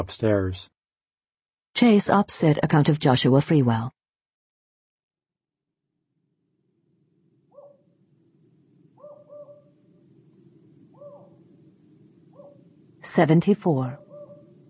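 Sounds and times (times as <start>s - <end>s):
speech: 0.0s - 0.8s, 1.8s - 4.0s, 13.0s - 14.0s
owl shrieking outside: 7.5s - 7.9s, 9.0s - 9.8s, 10.9s - 11.4s
steady low rumble of night ambience: 9.7s - 14.6s.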